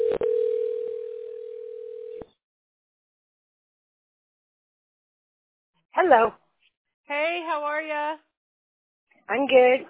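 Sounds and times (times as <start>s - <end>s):
telephone dial tone while placing a call: 0.0s - 2.3s
speech: 6.0s - 6.4s, 7.1s - 8.3s, 9.3s - 9.8s.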